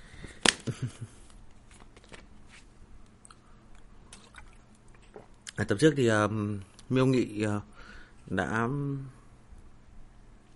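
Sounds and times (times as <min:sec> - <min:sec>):
faint noise: 0:00.0 - 0:10.5
speech: 0:00.7 - 0:01.2, 0:05.6 - 0:07.7, 0:08.3 - 0:09.2
person gulping a sip of water: 0:04.1 - 0:05.6.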